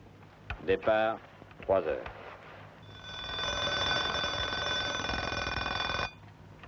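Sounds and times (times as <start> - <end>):
speech: 0.6 - 2.2
alarm clock bell ringing: 2.8 - 6.2.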